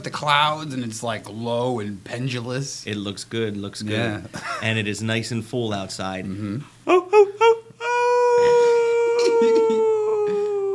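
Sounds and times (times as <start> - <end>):
speech: 0.0 - 7.2
laughter: 6.9 - 10.7
person imitating a werewolf howl: 6.9 - 10.7.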